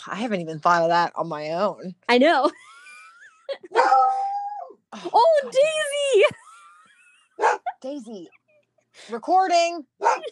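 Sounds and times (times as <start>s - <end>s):
speech: 0.0s - 2.7s, 4.9s - 6.4s, 7.4s - 8.4s, 9.0s - 10.3s
dog yelping, barking and howling: 3.7s - 4.8s, 7.4s - 7.7s.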